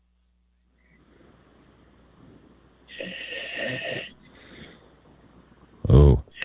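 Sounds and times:
telephone line hiss: 0:00.0 - 0:06.4
caller snoring through a telephone line: 0:02.9 - 0:04.2, 0:05.9 - 0:06.4.

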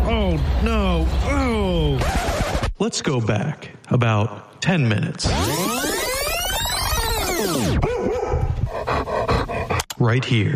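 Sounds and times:
speech: 0:00.4 - 0:02.2, 0:02.8 - 0:05.8, 0:10.0 - 0:10.5
dog whining: 0:06.1 - 0:09.8
dog barking: 0:07.8 - 0:08.6.

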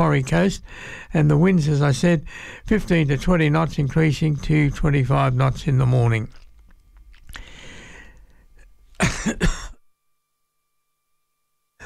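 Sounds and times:
low noise: 0:00.0 - 0:11.8
speech: 0:00.1 - 0:06.4, 0:09.0 - 0:09.6
person coughing to clear a tickle in the throat: 0:09.0 - 0:09.8.

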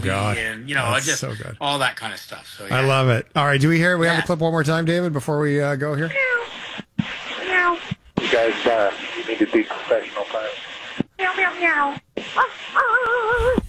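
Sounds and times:
speech: 0:00.0 - 0:06.3, 0:07.6 - 0:13.6
pilots imitating cat meows over a radio channel: 0:11.2 - 0:13.6
pilots imitating dog barks over a radio channel: 0:12.2 - 0:13.6.

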